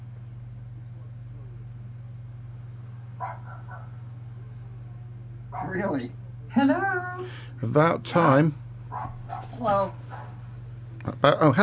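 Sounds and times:
constant low electrical hum: 0.0 - 11.6
recorded dog bark played by a smart speaker: 3.2 - 4.0, 5.5 - 5.8, 8.9 - 10.4
speech: 3.2 - 4.1, 5.5 - 10.3, 11.0 - 11.6.

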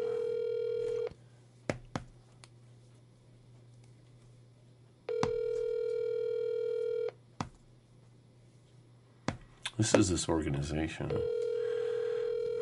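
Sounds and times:
buzzy telephone ringback tone while placing a call: 0.0 - 1.1, 5.1 - 7.1, 11.1 - 12.6
speech: 9.8 - 11.4.

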